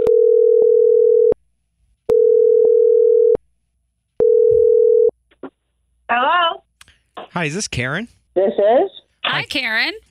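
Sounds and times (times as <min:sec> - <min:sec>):
telephone line tone while placing a call: 0:00.0 - 0:01.4, 0:02.1 - 0:03.4, 0:04.2 - 0:05.1
speech: 0:07.4 - 0:10.1.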